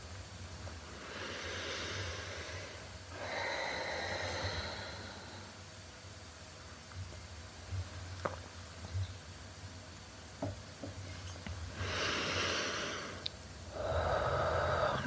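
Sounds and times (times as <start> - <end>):
low steady hum: 0.0 - 15.0
slow audible breathing in and out: 0.7 - 6.1, 11.7 - 15.0.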